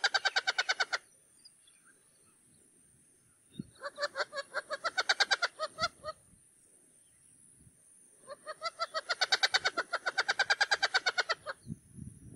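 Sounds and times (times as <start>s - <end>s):
wattled jacana chattering: 0.0s - 1.1s, 3.7s - 6.1s, 8.3s - 11.7s.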